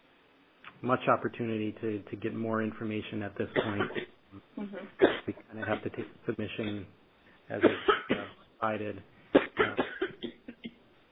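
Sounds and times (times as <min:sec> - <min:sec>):
speech: 0:00.8 - 0:08.0, 0:08.6 - 0:09.8
person on an open call line coughing: 0:03.5 - 0:04.1, 0:05.0 - 0:06.9, 0:07.5 - 0:08.4, 0:09.4 - 0:10.7.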